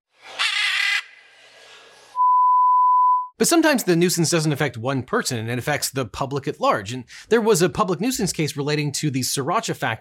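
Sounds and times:
macaw shrieking: 0.3 - 1.3
steady electronic beep tone: 2.2 - 3.4
speech: 3.4 - 10.0.

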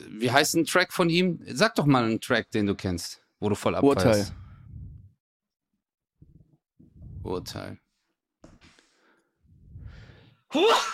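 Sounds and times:
speech: 0.2 - 4.4, 7.2 - 7.8, 10.5 - 10.9
drawn-in inhale: 8.7 - 10.4
person sneezing: 10.5 - 10.9.

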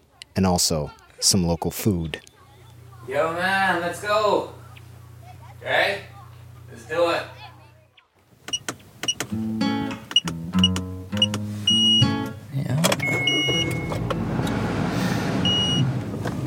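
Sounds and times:
speech: 0.4 - 2.3, 3.1 - 4.6, 5.6 - 6.1, 6.8 - 7.4
car driving on roads in Israel: 8.4 - 16.4.

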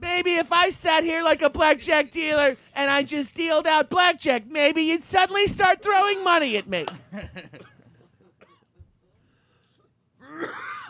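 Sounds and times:
speech: 0.2 - 7.7
smoking person coughing raspily: 7.6 - 8.8, 10.2 - 10.8
wheezy strained breaths: 9.1 - 10.0.

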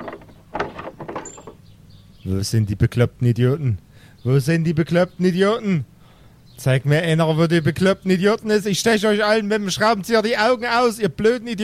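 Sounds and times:
front door creaking open: 0.0 - 1.8
speech: 2.3 - 5.9, 6.6 - 11.6.

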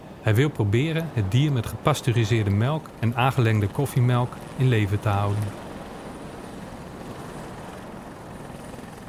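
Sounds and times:
speech: 0.2 - 5.6
helicopter engine and rotor on a sandbank: 2.8 - 9.0.

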